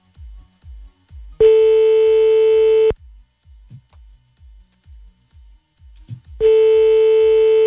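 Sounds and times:
faint low rhythmic pulses: 0:00.0 - 0:07.6
telephone ringback tone of an outgoing call: 0:01.4 - 0:03.0, 0:06.4 - 0:07.6.

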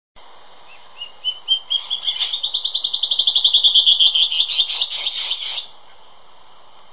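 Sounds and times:
band-tailed antbird Hypocnemoides maculicauda accelerating whistled trill: 0:00.7 - 0:05.7.

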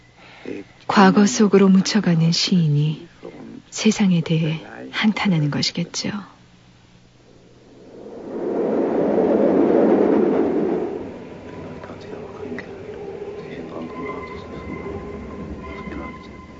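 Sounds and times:
speech: 0:00.4 - 0:03.1, 0:03.7 - 0:06.3
subway train on the move: 0:07.7 - 0:16.5.

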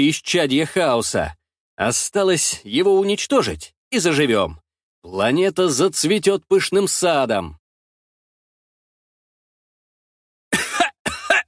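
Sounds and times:
speech: 0:00.0 - 0:07.6
man coughing and clearing his throat: 0:10.5 - 0:11.4.

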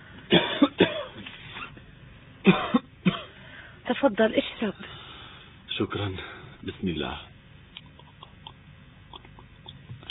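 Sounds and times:
person coughing: 0:00.3 - 0:01.2, 0:02.5 - 0:03.3
speech: 0:04.0 - 0:04.9, 0:05.8 - 0:07.3.

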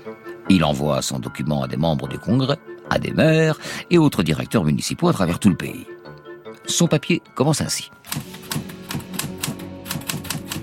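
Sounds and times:
speech: 0:00.0 - 0:06.0, 0:06.7 - 0:08.3
typing on a typewriter: 0:08.1 - 0:10.6.

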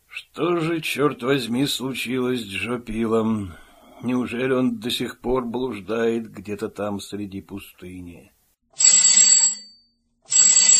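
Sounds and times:
speech: 0:00.4 - 0:08.9
telephone ringing: 0:08.8 - 0:10.7.

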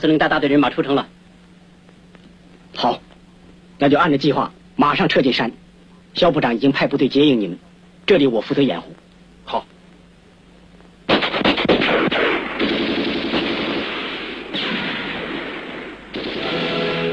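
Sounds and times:
speech: 0:00.0 - 0:01.2, 0:02.8 - 0:03.0, 0:03.8 - 0:09.7
rapid bursts of gunfire in a dense barrage: 0:11.1 - 0:17.0.

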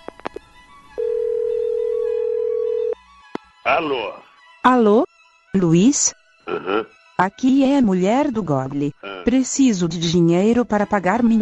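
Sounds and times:
telephone line tone after dialling: 0:01.0 - 0:03.0
speech: 0:03.7 - 0:11.4.

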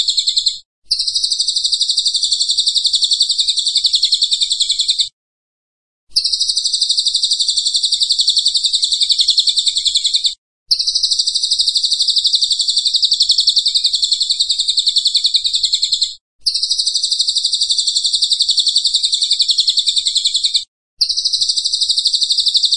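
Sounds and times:
Pygmy bushtit singing high rapid buzzy trill: 0:00.0 - 0:05.2, 0:06.1 - 0:22.7.

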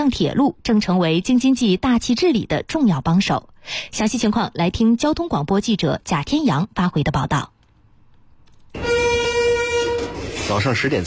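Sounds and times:
speech: 0:00.0 - 0:07.5, 0:10.5 - 0:11.0
horn of a 105-car freight train departing a railway station in Tangshan: 0:08.8 - 0:10.5.

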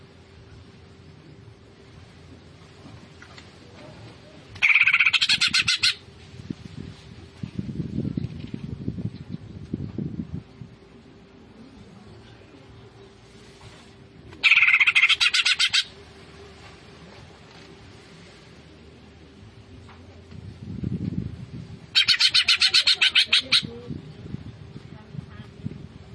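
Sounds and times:
low background hum: 0:00.0 - 0:26.1
Greater green leafbird singing fast chattering notes: 0:04.6 - 0:06.0, 0:14.4 - 0:16.0, 0:21.9 - 0:23.9.

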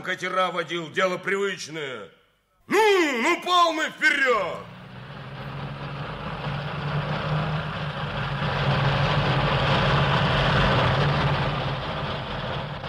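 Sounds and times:
speech: 0:00.0 - 0:04.8
heavy tank engine roaring while driving up a slope: 0:04.1 - 0:12.8.

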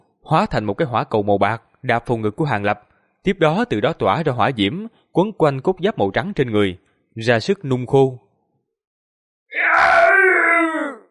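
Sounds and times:
speech: 0:00.3 - 0:08.2
roaring howl: 0:09.6 - 0:11.0.

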